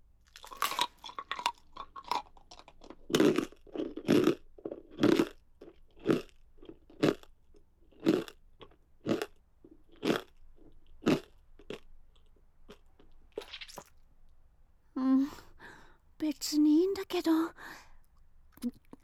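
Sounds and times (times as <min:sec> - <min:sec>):
crunchy food being chewed: 0:00.2 - 0:14.4, 0:18.0 - 0:19.0
soft voice speaking: 0:16.2 - 0:17.6.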